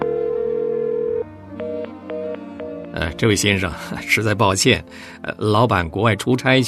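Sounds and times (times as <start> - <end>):
telephone dial tone: 0.0 - 1.3
speech: 3.0 - 6.6.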